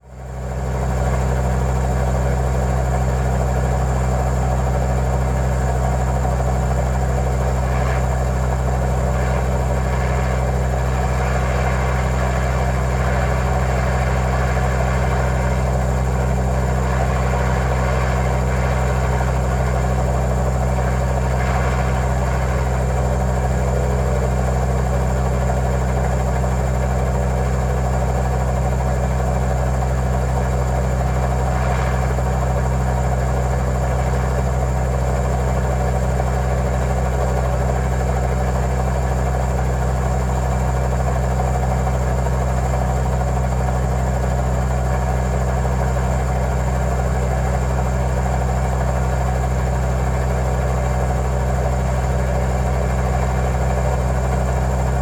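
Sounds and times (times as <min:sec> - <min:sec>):
helicopter in flight heard from the cockpit: 0:00.0 - 0:54.9.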